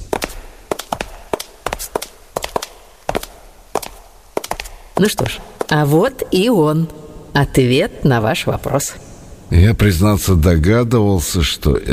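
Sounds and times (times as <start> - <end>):
footsteps with sharp clicking heel strikes on a hard museum hall floor: 0.0 - 6.4
speech: 5.0 - 11.9.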